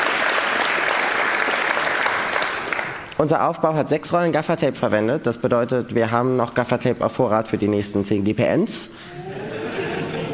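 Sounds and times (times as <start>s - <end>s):
audience applause from a seated crowd at a tech community event: 0.0s - 3.1s
speech: 3.2s - 9.4s
laughter: 9.1s - 10.3s.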